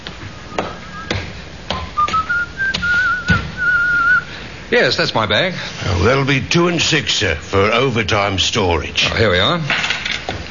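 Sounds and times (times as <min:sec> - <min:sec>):
man whistling a tune: 0:00.3 - 0:01.2, 0:02.0 - 0:04.3
speech: 0:04.7 - 0:10.0.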